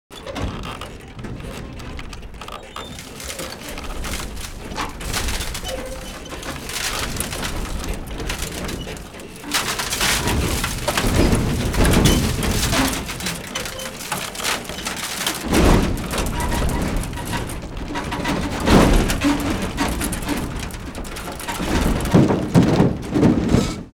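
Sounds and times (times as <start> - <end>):
metal creaking under stress: 0.1 - 23.9.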